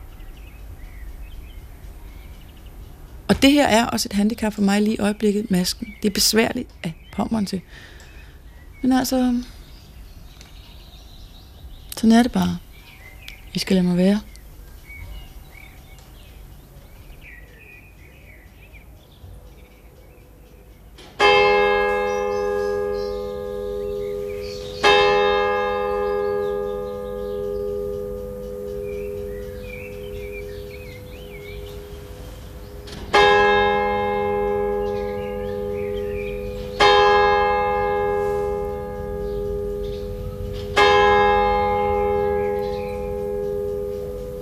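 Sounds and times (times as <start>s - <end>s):
faint birdsong: 0.0s - 44.3s
speech: 3.3s - 8.0s, 8.8s - 9.6s, 12.0s - 12.6s, 13.5s - 14.3s
church bell ringing in slow strikes: 19.4s - 44.3s.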